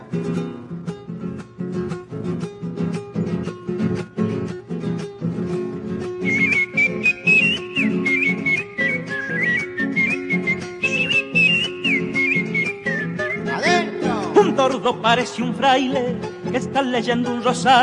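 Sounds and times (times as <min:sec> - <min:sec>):
steady, rhythmic musical accompaniment: 0:00.9 - 0:17.8
person whistling imitations of woodland bird songs: 0:06.3 - 0:13.8
speech: 0:15.0 - 0:17.8.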